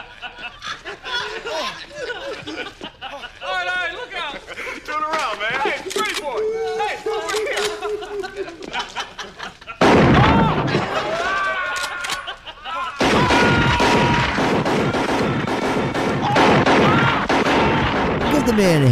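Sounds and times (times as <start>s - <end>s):
laughter: 0.0s - 14.3s
heavy gunfire in a film scene: 9.8s - 11.0s, 13.0s - 18.9s
speech: 18.6s - 18.9s.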